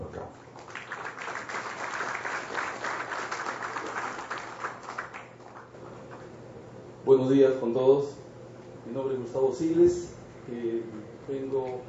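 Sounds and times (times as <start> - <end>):
audience applause at a ceremony: 0.6 - 5.7
speech: 7.1 - 8.2, 8.9 - 11.8.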